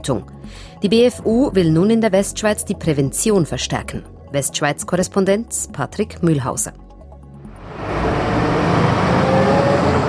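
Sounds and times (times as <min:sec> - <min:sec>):
speech: 0:00.0 - 0:06.8
morning rush-hour city traffic in Lausanne: 0:07.5 - 0:10.0.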